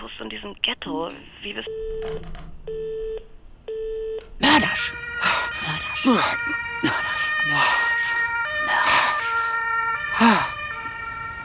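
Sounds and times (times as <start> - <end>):
speech: 0.2 - 2.8, 4.5 - 7.9
ambulance siren: 4.4 - 11.4.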